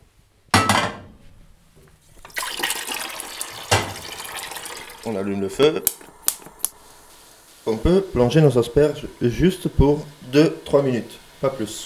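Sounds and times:
metal cookware clanking: 0:00.6 - 0:01.4, 0:03.6 - 0:04.3
water running from a tap into a large pot: 0:02.0 - 0:11.8
speech: 0:05.0 - 0:06.0, 0:07.7 - 0:11.8.

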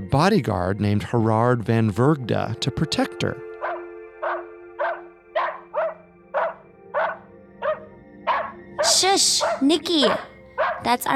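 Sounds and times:
speech: 0:00.1 - 0:03.4, 0:08.9 - 0:11.1
dog barking: 0:03.6 - 0:10.9.

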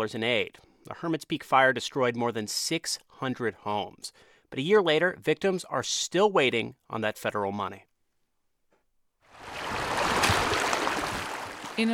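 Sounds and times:
speech: 0:00.0 - 0:07.9, 0:11.8 - 0:11.9
river water fed by snowmelt rushing: 0:09.3 - 0:11.9.

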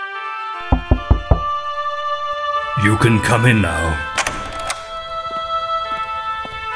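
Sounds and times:
sustained musical drone: 0:00.5 - 0:06.6
knocking on a wooden door: 0:00.6 - 0:01.7
speech: 0:02.8 - 0:04.1.

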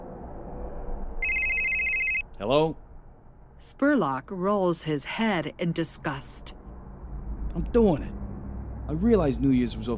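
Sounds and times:
telephone with trilling electronic ring: 0:01.2 - 0:02.3
speech: 0:02.4 - 0:02.8, 0:03.6 - 0:06.6, 0:07.6 - 0:08.2, 0:08.9 - 0:09.9.

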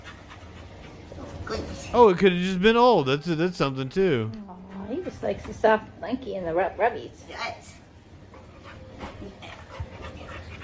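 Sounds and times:
puppy panting: 0:00.0 - 0:01.5, 0:08.3 - 0:10.6
speech: 0:01.5 - 0:07.8.

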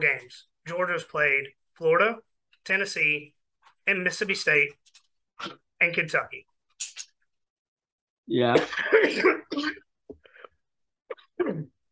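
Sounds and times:
speech: 0:00.0 - 0:04.8, 0:05.4 - 0:07.0, 0:08.3 - 0:09.8
person clearing throat: 0:08.5 - 0:09.9, 0:11.1 - 0:11.8
person coughing: 0:08.5 - 0:09.9, 0:11.1 - 0:11.8.

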